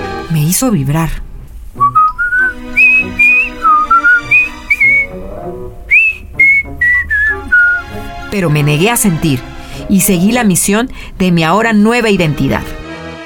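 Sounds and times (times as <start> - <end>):
speech: 0.3 - 1.2, 8.3 - 12.8
person whistling a melodic tune: 1.8 - 5.2, 5.9 - 7.9.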